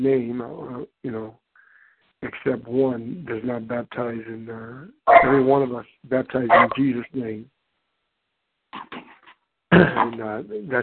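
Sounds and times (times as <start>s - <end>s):
speech: 0.0s - 1.4s, 2.2s - 7.6s, 9.7s - 10.8s
dog barking at another dog running around the house: 5.1s - 5.4s, 6.5s - 6.8s.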